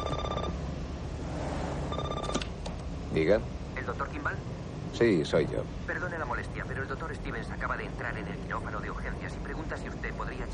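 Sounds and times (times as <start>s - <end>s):
car telephone ringing with electronic trilling: 0.0s - 0.6s, 1.9s - 2.5s
steady low engine hum: 0.0s - 10.5s
speech: 3.1s - 10.5s.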